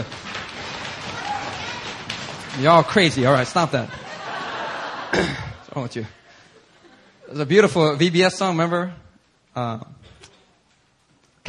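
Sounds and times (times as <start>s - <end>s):
large crowd stomping their feet: 0.0s - 3.0s
speech: 2.6s - 4.0s, 5.1s - 6.2s, 7.3s - 9.0s, 9.6s - 10.1s
laughter: 3.5s - 5.7s.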